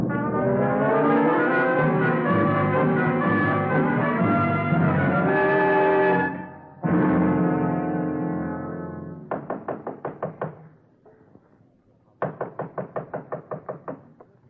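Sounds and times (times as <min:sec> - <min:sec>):
sustained musical chord: 0:00.0 - 0:09.2
rapid knocking on a door: 0:09.3 - 0:10.7, 0:12.2 - 0:14.2.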